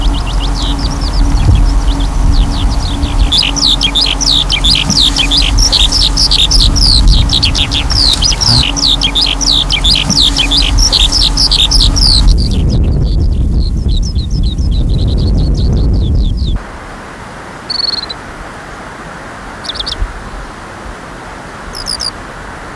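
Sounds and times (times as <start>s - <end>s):
skylark singing over a barley field: 0.0s - 16.1s, 21.8s - 22.1s
low steady hum and rumble: 0.0s - 17.3s.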